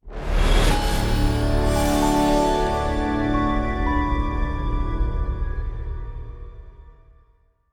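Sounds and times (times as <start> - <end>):
startup screen sound: 0.4 - 5.1.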